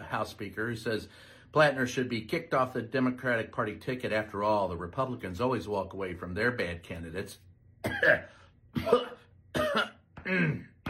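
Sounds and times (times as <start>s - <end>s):
speech: 0.1s - 9.1s, 9.7s - 10.7s
person coughing forcefully: 7.8s - 10.8s.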